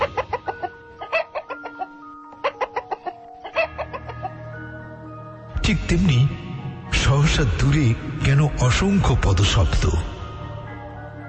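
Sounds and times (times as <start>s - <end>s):
chicken clucking: 0.0s - 4.4s
speech: 5.7s - 6.4s, 7.1s - 10.1s.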